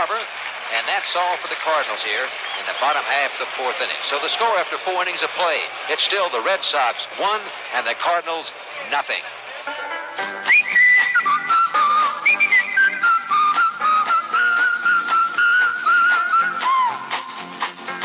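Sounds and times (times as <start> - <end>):
speech: 0.3 - 10.3
busy instrumental backing music: 9.5 - 18.0
person whistling a bright melodic tune in a jingle: 10.4 - 17.4.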